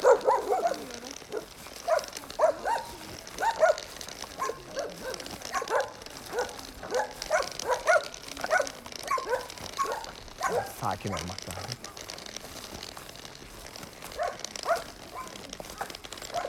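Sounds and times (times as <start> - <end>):
dog barking with a hoarse raspy voice: 0.0 - 3.8, 4.4 - 11.8
steady outdoor noise: 0.0 - 16.4
speech: 11.0 - 11.5.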